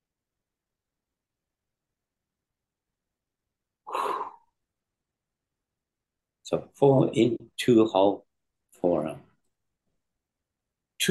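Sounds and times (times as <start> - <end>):
deep breath drawn in through the nose: 3.9 - 4.5
speech: 6.5 - 9.2.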